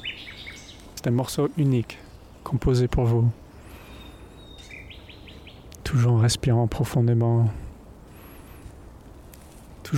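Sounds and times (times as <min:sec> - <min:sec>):
small birds singing with whistles and high chirps: 0:00.0 - 0:07.5
faint hiss of outdoor noise: 0:00.0 - 0:09.9
speech: 0:01.0 - 0:03.4, 0:05.9 - 0:07.6.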